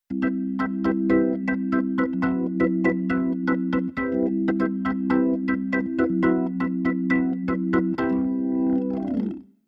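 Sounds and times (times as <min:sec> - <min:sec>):
keyboard organ playing bossa: 0:00.1 - 0:09.4.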